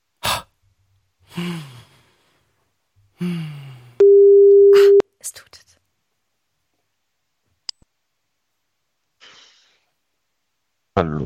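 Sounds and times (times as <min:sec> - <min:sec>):
speech: 0:01.3 - 0:01.8, 0:11.0 - 0:11.2
breathy sighs: 0:01.3 - 0:02.4, 0:03.2 - 0:04.0
phone outgoing call tone after the call button is pressed: 0:04.0 - 0:05.0.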